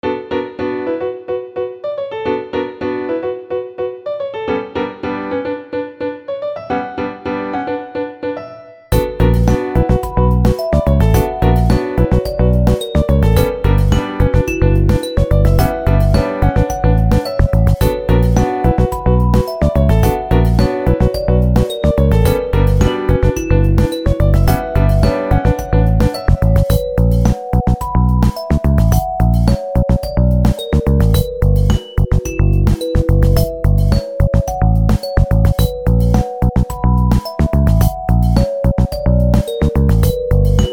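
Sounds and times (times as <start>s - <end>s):
upbeat piano: 0.0s - 40.7s.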